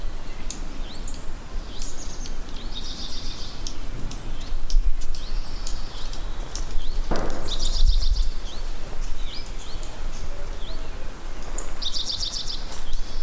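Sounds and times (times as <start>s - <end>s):
ruby-crowned kinglet song: 0.2s - 13.2s
persistent low-frequency noise: 7.1s - 9.8s.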